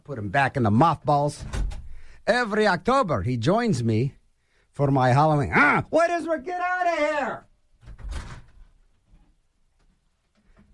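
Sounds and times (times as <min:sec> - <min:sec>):
speech: 0:00.1 - 0:01.6, 0:02.3 - 0:04.2, 0:04.8 - 0:07.5
door shutting: 0:07.8 - 0:08.7.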